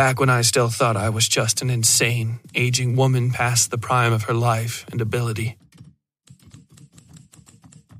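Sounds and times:
speech: 0.0 - 5.6
typewriter keystrokes: 5.6 - 7.9.

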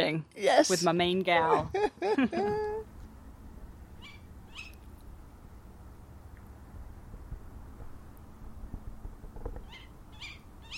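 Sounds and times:
speech: 0.1 - 2.9
laughter: 1.5 - 2.8
tawny owl calling in the distance: 4.0 - 4.9, 9.6 - 10.7.

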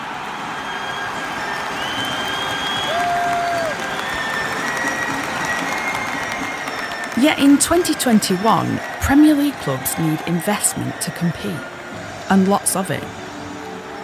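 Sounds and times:
big football stadium crowd roaring: 0.0 - 14.0
whistle-like tone: 0.5 - 9.0
speech: 7.2 - 13.2.

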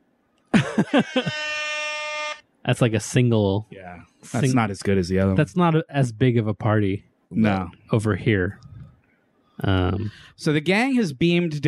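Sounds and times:
laughter: 0.5 - 1.5
speech: 0.8 - 1.6, 2.7 - 8.7, 9.6 - 11.6
air horn sample blasts: 1.2 - 2.4.

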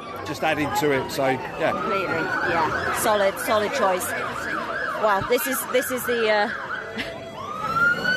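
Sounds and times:
emergency vehicle siren wailing outside: 0.0 - 8.1
speech: 0.3 - 7.1.

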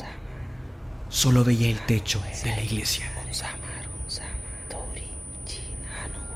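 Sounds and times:
low steady rumble: 0.0 - 6.3
speech: 1.1 - 4.4
several people whispering: 1.5 - 6.3.

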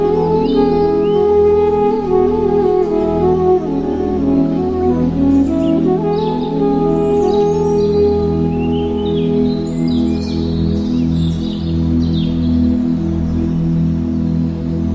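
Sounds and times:
flute playing a slow melody: 0.0 - 10.8
soft forest outdoor ambience: 0.0 - 14.9
steady low drone: 0.0 - 14.9
high quick bird chirps in a forest: 5.3 - 13.0.

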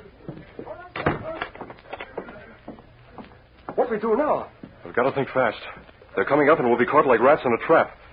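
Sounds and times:
door thudding shut: 1.0 - 1.6
speech: 3.9 - 8.0.

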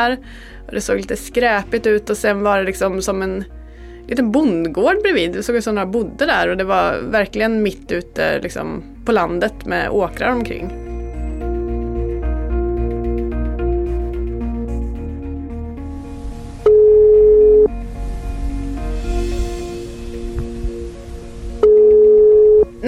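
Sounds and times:
speech: 0.0 - 10.8
soft music: 0.0 - 22.8
telephone ringback tone during a call: 16.7 - 17.7, 21.6 - 22.7.

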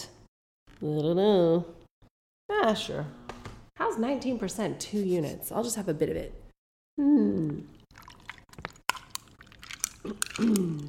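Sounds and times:
speech: 0.8 - 1.8, 2.5 - 3.2, 3.8 - 6.4, 7.0 - 8.0, 10.0 - 10.8
canned cocktail poured over ice: 7.8 - 10.8.

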